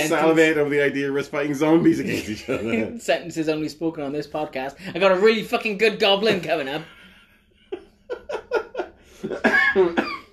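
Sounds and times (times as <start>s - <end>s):
speech: 0.0s - 7.0s, 9.2s - 10.2s
laughter: 1.8s - 3.0s, 6.6s - 10.3s
fit of short dry and throaty coughs: 9.4s - 10.3s.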